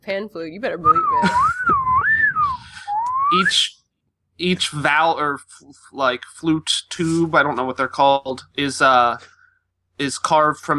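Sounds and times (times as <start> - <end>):
speech: 0.0 - 2.7, 3.3 - 3.8, 4.4 - 9.3, 10.0 - 10.7
slide whistle: 0.8 - 3.7.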